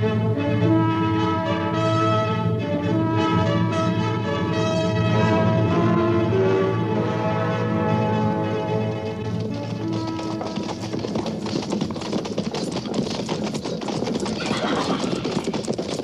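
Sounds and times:
tonal music: 0:00.0 - 0:10.9
horses of a cavalry patrol clip-clopping to a halt: 0:06.5 - 0:16.0.

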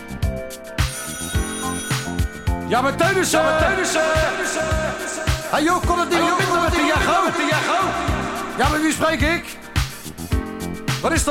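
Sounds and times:
telephone bell ringing: 0:00.8 - 0:03.0
speech: 0:02.7 - 0:09.6, 0:11.0 - 0:11.2.

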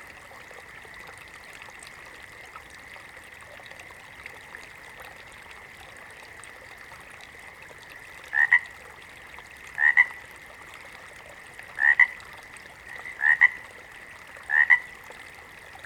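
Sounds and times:
water frog croaking in rasping paired pulses: 0:08.3 - 0:08.7, 0:09.8 - 0:10.2, 0:11.8 - 0:12.2, 0:12.9 - 0:13.6, 0:14.5 - 0:14.9.

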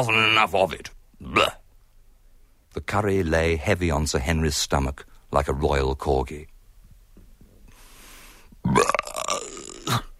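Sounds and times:
speech: 0:00.0 - 0:01.6, 0:02.8 - 0:06.5, 0:08.6 - 0:09.2
person belching: 0:08.6 - 0:10.1.

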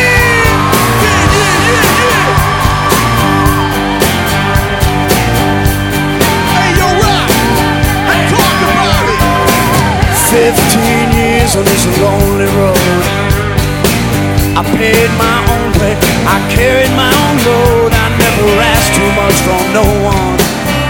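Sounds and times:
live concert crowd screaming and whooping: 0:00.0 - 0:13.8
band playing at a live concert: 0:00.0 - 0:20.8
speech: 0:11.5 - 0:12.8, 0:14.6 - 0:18.1, 0:19.2 - 0:20.4.

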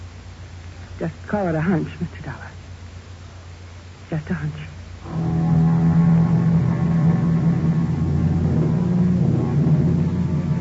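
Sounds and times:
speech: 0:01.0 - 0:02.6, 0:04.1 - 0:05.5
rented car engine droning while driving: 0:05.0 - 0:10.5.

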